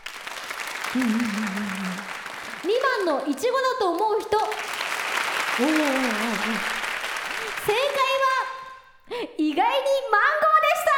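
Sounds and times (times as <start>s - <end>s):
studio audience clapping in answer to a quiz question: 0.0s - 8.4s
speech: 0.9s - 1.9s, 2.6s - 4.8s, 5.6s - 6.8s, 7.4s - 8.3s, 9.1s - 10.6s.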